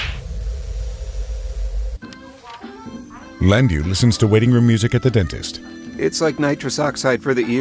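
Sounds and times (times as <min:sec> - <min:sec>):
sharp crisp slap: 0:00.0 - 0:00.3
steady low rumble: 0:00.0 - 0:02.0
speech: 0:03.4 - 0:07.5.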